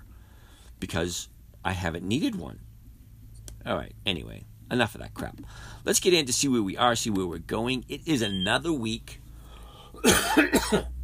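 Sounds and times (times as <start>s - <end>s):
speech: 0.8s - 2.7s, 3.6s - 9.2s, 10.0s - 11.0s
harsh coughing: 10.0s - 10.9s.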